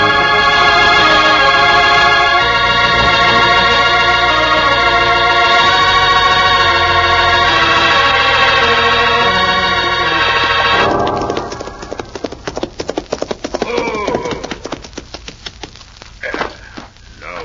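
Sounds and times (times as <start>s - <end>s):
music: 0.0s - 13.2s
horses' hooves clip-clopping as riders ride: 10.8s - 17.4s.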